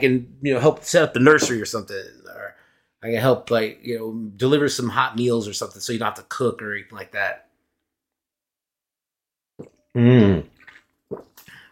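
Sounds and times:
speech: 0.0s - 7.5s, 9.6s - 10.5s
drinking water with a wet sip and a swallow: 9.6s - 11.7s
loud satisfied voiced ahh: 10.0s - 10.5s.

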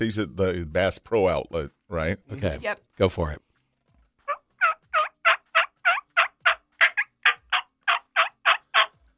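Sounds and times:
speech: 0.0s - 3.5s
turkey gobble blown on a small mouth call held behind the teeth: 4.2s - 9.0s.

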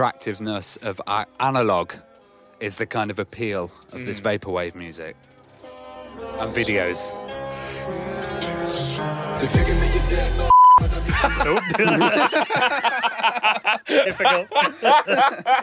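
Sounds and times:
speech: 0.0s - 5.3s, 6.2s - 7.3s, 8.8s - 15.6s
electronic censor beep over a swear word: 10.5s - 10.8s
several people laughing and chuckling: 10.9s - 15.6s.

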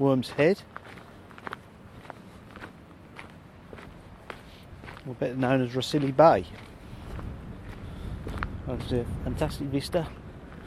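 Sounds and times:
speech: 0.0s - 1.0s, 5.0s - 6.7s, 8.7s - 10.2s
footsteps walking down a coastal path on the Gower: 0.0s - 10.6s.

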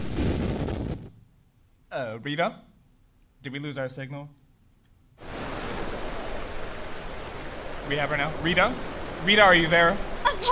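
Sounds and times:
speech: 2.0s - 2.7s, 3.4s - 4.4s, 7.9s - 10.5s
storm waves crashing against boardwalk pillars: 5.2s - 10.5s.

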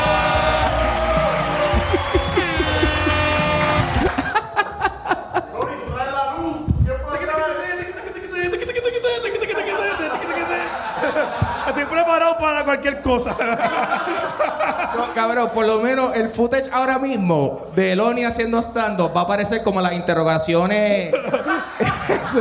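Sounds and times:
voices shouting over the noise: 0.0s - 4.2s
burst of sharp claps: 0.0s - 4.4s
audience at a stand-up comedy show cheering and whooping: 0.0s - 5.5s
laughter: 0.0s - 6.1s, 7.1s - 12.4s, 13.1s - 15.9s, 21.0s - 22.4s
speech: 13.1s - 14.2s, 15.2s - 21.4s, 22.2s - 22.4s.

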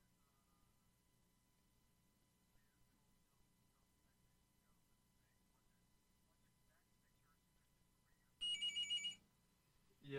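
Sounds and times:
phone buzzing with an incoming call: 8.4s - 9.2s.

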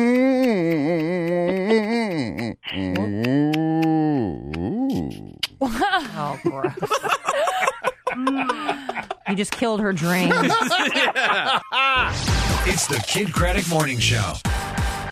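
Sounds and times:
person imitating a cow being milked: 0.0s - 5.4s
person laughing in choppy vocal bursts: 0.0s - 9.4s, 10.0s - 13.2s
speech: 6.3s - 7.2s, 9.4s - 14.9s.

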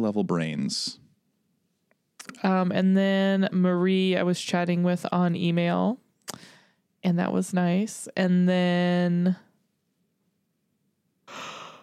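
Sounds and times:
speech: 0.0s - 1.0s, 2.4s - 9.5s
yawn: 11.3s - 11.8s.

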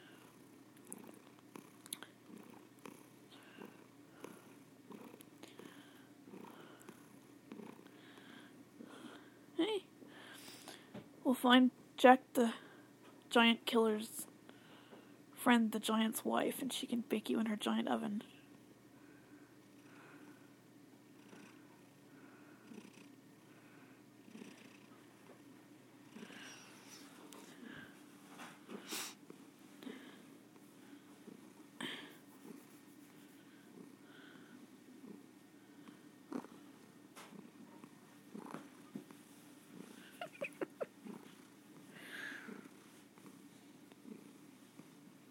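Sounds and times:
cat purring: 0.0s - 9.1s, 21.1s - 25.4s, 26.0s - 45.2s
speech: 11.3s - 12.6s, 13.3s - 14.3s, 15.4s - 18.3s
cat sniffs: 28.7s - 29.2s.

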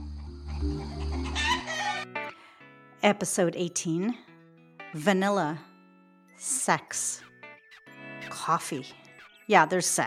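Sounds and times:
chickens clucking: 0.8s - 2.1s
speech: 3.0s - 4.3s, 4.9s - 5.7s, 6.4s - 7.3s, 8.4s - 10.0s.

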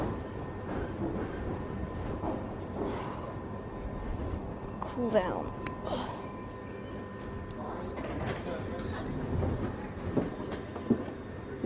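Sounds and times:
Underground train rumbling at a station platform: 0.0s - 11.6s
speech: 5.0s - 6.2s.

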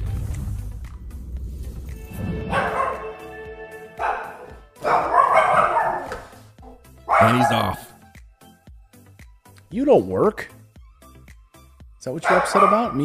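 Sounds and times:
dog barking harshly: 2.5s - 3.2s, 3.9s - 8.0s, 12.2s - 13.0s
speech: 7.2s - 7.8s, 9.8s - 10.6s, 12.0s - 13.0s.

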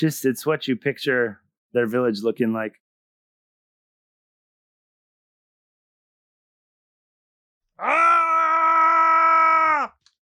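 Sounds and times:
speech: 0.0s - 2.8s
strained throaty scream from a TV scene: 7.8s - 10.0s.

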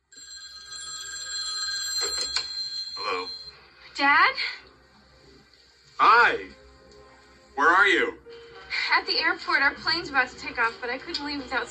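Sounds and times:
telephone bell ringing: 0.0s - 3.7s
speech: 4.0s - 4.6s, 6.0s - 6.6s, 7.6s - 8.2s, 8.9s - 11.7s.

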